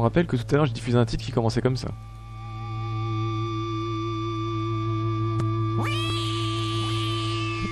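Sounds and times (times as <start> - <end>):
speech: 0.0 - 2.2
steady humming musical drone: 1.8 - 7.7
cat meowing at the opening of a music track: 5.8 - 7.7.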